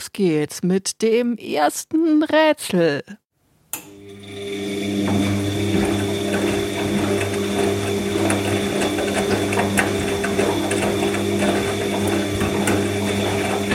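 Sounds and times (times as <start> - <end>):
speech: 0.2 - 3.2
washing machine running: 3.8 - 13.7.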